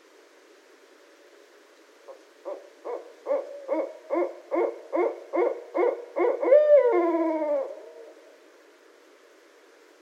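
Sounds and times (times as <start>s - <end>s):
background hiss: 0.0s - 10.0s
barred owl hooting: 2.1s - 8.3s.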